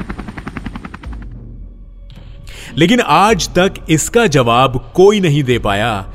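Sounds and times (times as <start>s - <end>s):
Indian Coast Guard rescue helicopter rotor thumping: 0.0s - 1.5s
speech: 2.7s - 6.1s.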